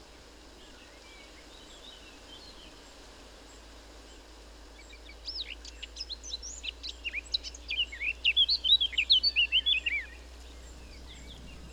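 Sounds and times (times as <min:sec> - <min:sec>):
Eurasian blackcap singing fluty warbled notes: 0:07.7 - 0:11.7.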